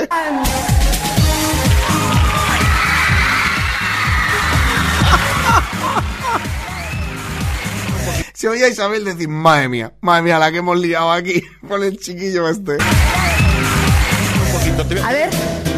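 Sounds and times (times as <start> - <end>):
audience screaming and yelling on TV recording: 0.2 - 8.2, 12.8 - 14.5
laughter: 1.7 - 8.2
speech: 8.4 - 13.2, 14.7 - 15.6.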